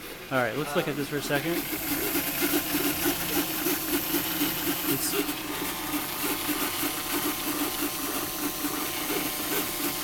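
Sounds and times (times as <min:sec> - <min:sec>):
3D printer running with rhythmic pulsing motor hum: 0:00.0 - 0:10.0
speech: 0:00.3 - 0:02.1.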